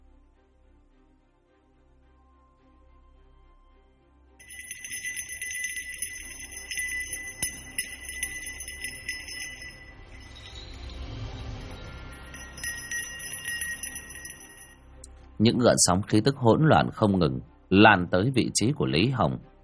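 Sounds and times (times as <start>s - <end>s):
silver hand bell shaken and ringing: 4.4s - 14.8s
speech: 15.4s - 19.5s.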